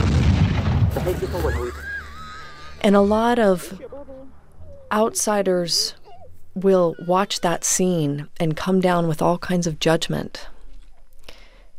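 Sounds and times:
bombs exploding during fighting on a front line: 0.0s - 2.8s
speech: 1.0s - 1.8s, 2.8s - 6.0s, 6.6s - 10.5s
laughter: 1.0s - 5.9s.

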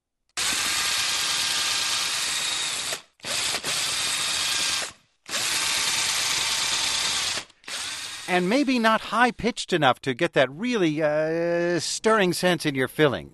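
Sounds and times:
DIY power drill whirring: 0.4s - 8.8s
speech: 8.3s - 13.3s.

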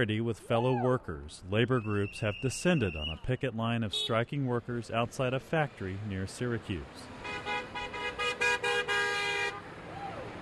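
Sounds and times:
speech: 0.0s - 7.5s
car horn honking: 7.2s - 9.6s.

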